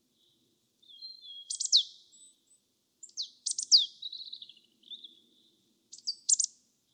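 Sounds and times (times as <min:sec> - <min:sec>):
Marsh tit Poecile palustris calling: 0:00.9 - 0:02.3, 0:03.0 - 0:05.1, 0:05.9 - 0:06.5.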